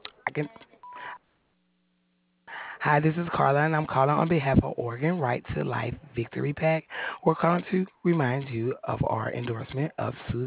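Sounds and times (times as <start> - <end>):
speech: 0.0 - 0.7, 2.8 - 10.4
answering machine beep: 0.8 - 1.2.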